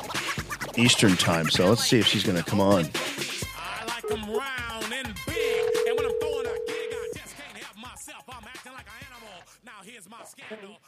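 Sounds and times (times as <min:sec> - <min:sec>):
speech: 0:00.8 - 0:03.3
music with sung or spoken vocals: 0:01.6 - 0:10.8
ringback tone from an outgoing phone call: 0:05.3 - 0:07.2.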